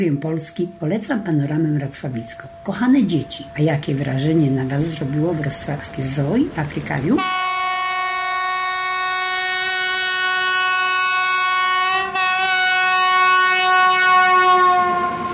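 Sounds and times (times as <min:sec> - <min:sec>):
speech: 0:00.0 - 0:07.5
train slowly starting to move along the rails: 0:02.3 - 0:15.3
train horn blast: 0:07.2 - 0:15.3.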